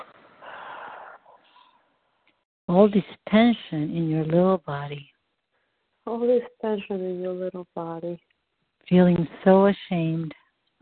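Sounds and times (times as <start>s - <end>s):
deep breath during a guided tapping relaxation exercise: 0.0s - 1.8s, 5.5s - 6.0s
speech: 2.7s - 5.1s, 6.1s - 8.3s, 8.9s - 10.4s.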